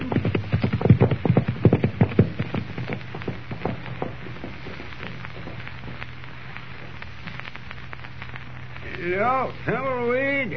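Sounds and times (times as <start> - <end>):
many horses' hooves clip-clopping on hard ground as horses ride off: 0.0 - 6.2
speech: 9.3 - 10.5.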